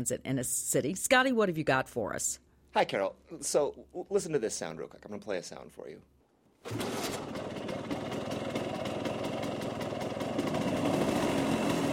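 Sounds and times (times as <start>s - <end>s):
speech: 0.0s - 7.4s
150 cc two-wheeled motor scooter engine running: 6.7s - 11.9s.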